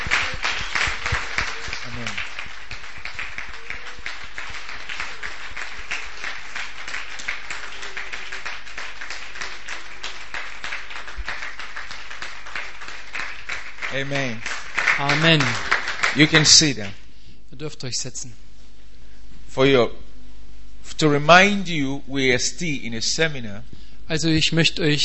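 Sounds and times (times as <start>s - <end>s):
church congregation clapping during a seminar: 0.0s - 17.0s
speech: 14.0s - 17.0s, 17.6s - 18.4s, 19.6s - 20.0s, 21.0s - 25.0s.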